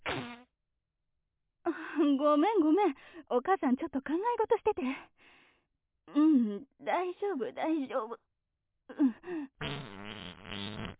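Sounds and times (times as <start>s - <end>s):
fart inside a car on a highway: 0.0s - 0.5s, 9.6s - 10.9s
speech: 2.1s - 5.4s, 6.1s - 8.2s, 8.9s - 9.6s.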